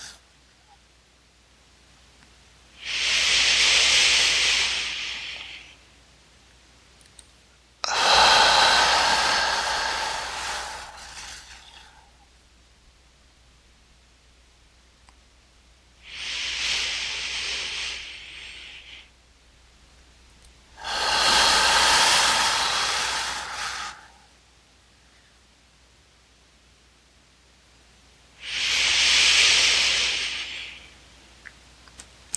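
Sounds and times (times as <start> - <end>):
deep breaths exhaled during a paced breathing exercise: 2.8 - 5.8, 7.8 - 12.3, 16.0 - 19.1, 20.7 - 24.4, 28.4 - 31.0.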